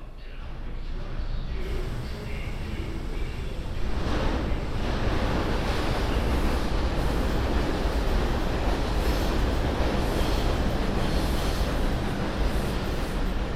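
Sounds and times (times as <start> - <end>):
faint voices: 0.0 - 6.4
subway car wheels and motor roar heard from inside: 0.0 - 13.5.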